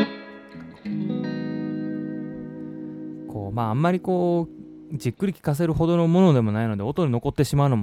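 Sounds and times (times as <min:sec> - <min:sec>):
Stratocaster electric guitar with reverb effect playing improvised passage: 0:00.0 - 0:05.6
speech: 0:03.3 - 0:07.8.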